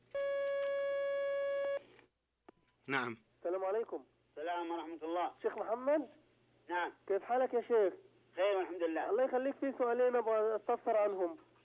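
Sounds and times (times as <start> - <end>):
telephone line tone as a phone call connects: 0.1 - 1.8
speech: 2.9 - 11.4.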